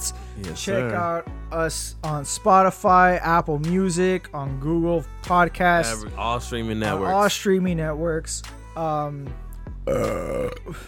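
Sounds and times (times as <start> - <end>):
speech: 0.4 - 10.8
long rumbling belch: 9.8 - 10.8
loud burping: 9.8 - 10.8.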